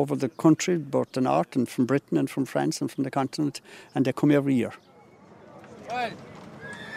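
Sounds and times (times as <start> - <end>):
speech: 0.0 - 4.9, 5.9 - 6.3
horse hooves clip-clopping: 5.5 - 6.9
other horse sounds at a fair: 5.6 - 6.9
horse whinnying at a fair: 6.6 - 6.9.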